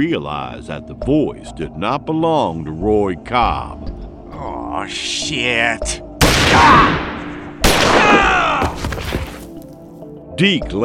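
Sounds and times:
speech: 0.0 - 7.0, 10.4 - 10.8
gunshots: 6.2 - 9.3.

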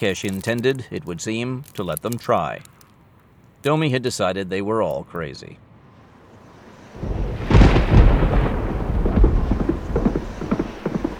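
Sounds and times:
speech: 0.0 - 2.8, 3.6 - 5.7
sharp thunderclap: 7.0 - 11.1.

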